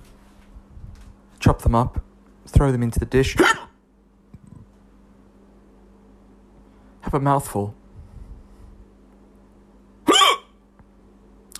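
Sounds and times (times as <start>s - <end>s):
faint hum: 0.0s - 11.5s
speech: 1.4s - 3.6s, 7.1s - 7.8s
hiccup after eating chopped red jalapeño peppers: 3.4s - 3.8s, 10.0s - 10.6s.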